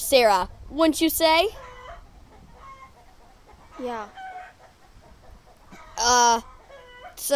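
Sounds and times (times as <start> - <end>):
speech: 0.1 - 1.6, 3.8 - 4.2, 6.0 - 6.5, 7.2 - 7.3
chicken clucking at a poultry farm: 1.6 - 7.2.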